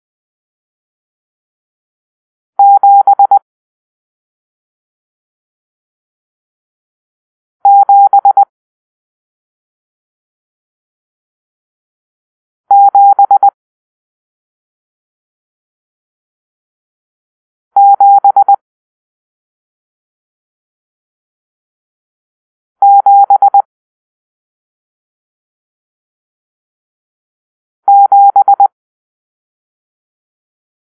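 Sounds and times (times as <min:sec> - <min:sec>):
morse code for numeral seven: 0:02.6 - 0:03.4, 0:07.7 - 0:08.5, 0:12.7 - 0:13.5, 0:17.8 - 0:18.6, 0:22.8 - 0:23.7, 0:27.9 - 0:28.7.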